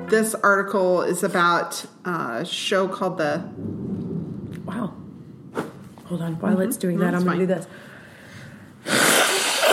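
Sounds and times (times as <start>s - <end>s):
speech: 0.1s - 3.9s, 6.1s - 7.9s
loud nose blowing: 8.8s - 9.7s.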